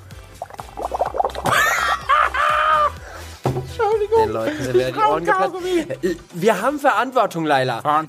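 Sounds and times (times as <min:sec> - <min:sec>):
liquid bubbling in a glass: 0:00.3 - 0:01.5
laughter: 0:01.5 - 0:03.0
speech: 0:04.2 - 0:08.0.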